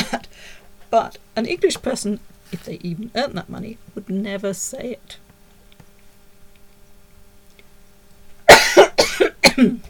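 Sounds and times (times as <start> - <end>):
speech: 0.9 - 5.2, 9.5 - 9.8
harsh coughs: 8.5 - 9.8.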